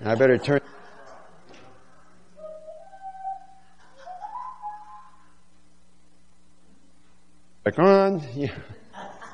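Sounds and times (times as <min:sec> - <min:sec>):
speech: 0:00.0 - 0:00.8, 0:07.6 - 0:08.8
low steady hum: 0:00.0 - 0:09.3
person whistling: 0:02.4 - 0:05.4.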